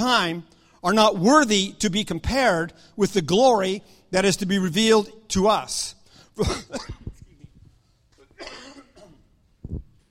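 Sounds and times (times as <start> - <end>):
speech: 0.0 - 7.1
person coughing harshly: 6.4 - 7.5, 8.2 - 9.4.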